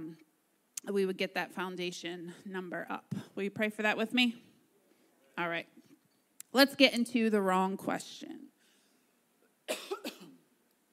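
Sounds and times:
speech: 0:00.9 - 0:04.5, 0:05.4 - 0:05.8, 0:06.5 - 0:08.5
person coughing harshly: 0:09.7 - 0:10.4.

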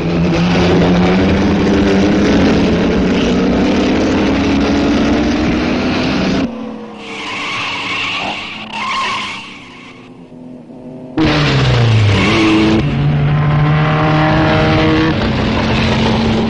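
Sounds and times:
Sunbeam and Fiat racing car engines roaring around a track: 0:00.0 - 0:16.4.

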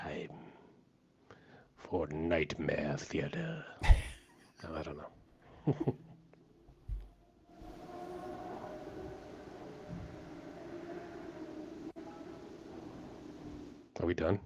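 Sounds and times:
speech: 0:01.9 - 0:04.0, 0:04.6 - 0:06.1, 0:14.0 - 0:14.4
motorcycle engine rumbling on nearby street: 0:07.7 - 0:13.9.

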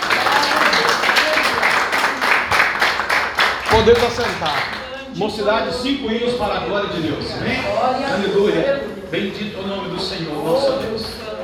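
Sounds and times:
audience applauding: 0:00.0 - 0:05.0
speech: 0:03.8 - 0:11.3.

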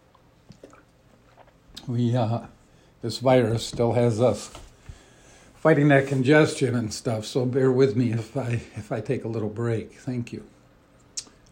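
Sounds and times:
soft wet slurping sip from a drink: 0:00.1 - 0:01.9
speech: 0:01.9 - 0:04.6, 0:05.6 - 0:10.6
mouth clicks: 0:11.0 - 0:11.5.

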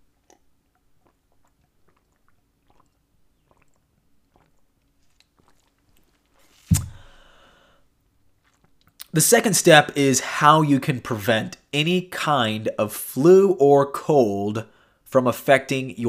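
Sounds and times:
mouth clicks and quiet slurps: 0:00.0 - 0:07.0, 0:08.3 - 0:09.2
breathy exhale: 0:06.9 - 0:07.8
speech: 0:09.2 - 0:16.0.

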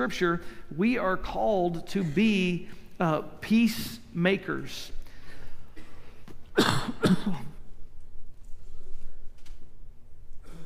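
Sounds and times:
speech: 0:00.0 - 0:05.0, 0:06.6 - 0:07.5
harsh cough: 0:05.8 - 0:07.6.

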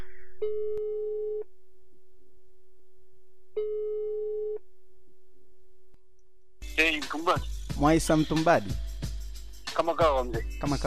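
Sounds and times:
speech: 0:00.4 - 0:00.9, 0:07.1 - 0:08.9, 0:09.8 - 0:10.8
ringback tone of an outgoing telephone call: 0:03.6 - 0:04.6.

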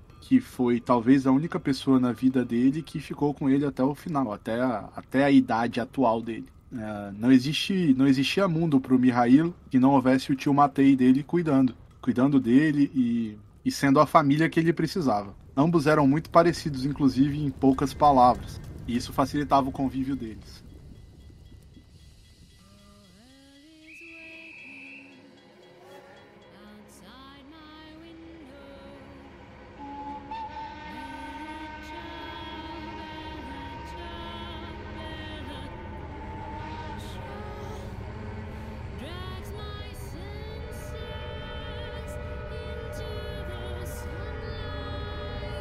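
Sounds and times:
locomotive maneuvering in station: 0:00.0 - 0:23.3, 0:23.9 - 0:45.5
speech: 0:00.2 - 0:20.6
locomotive whistle blowing: 0:23.8 - 0:26.5, 0:28.0 - 0:45.5.

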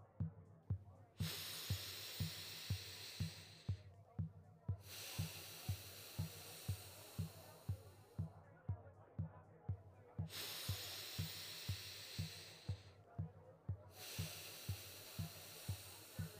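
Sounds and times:
steady faint pulsing beat: 0:00.0 - 0:16.3
slow deep breaths in through the nose and out during a guided meditation: 0:01.2 - 0:03.8, 0:04.8 - 0:08.3, 0:10.2 - 0:13.3, 0:13.9 - 0:16.3.

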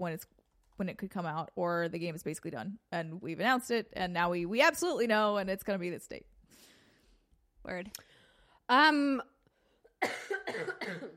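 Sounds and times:
speech: 0:00.0 - 0:06.7, 0:07.6 - 0:08.1, 0:08.7 - 0:09.3, 0:10.0 - 0:11.1
person coughing harshly: 0:10.0 - 0:11.1.

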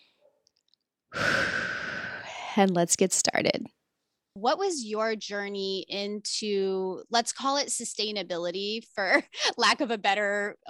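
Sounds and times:
deep breath taken together: 0:01.1 - 0:02.6
speech: 0:02.6 - 0:03.8, 0:04.4 - 0:10.6.

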